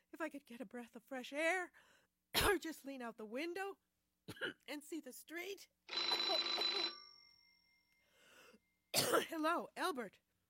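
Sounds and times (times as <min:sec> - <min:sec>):
speech: 0:00.2 - 0:07.0, 0:09.0 - 0:10.2
telephone bell ringing: 0:05.9 - 0:08.0.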